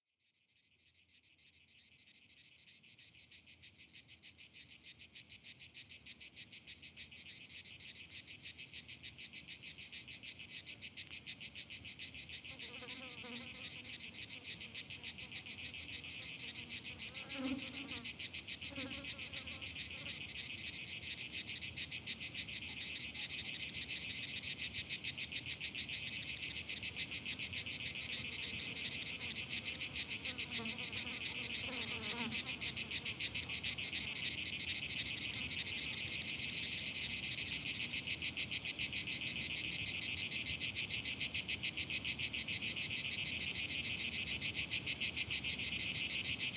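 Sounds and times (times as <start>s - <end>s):
crickets chirping: 0.4s - 46.5s.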